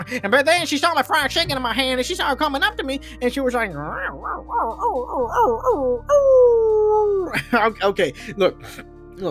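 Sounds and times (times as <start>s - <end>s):
speech: 0.0s - 9.3s
person imitating a dog's growl with whiny yelping cries and a howl: 3.8s - 7.4s.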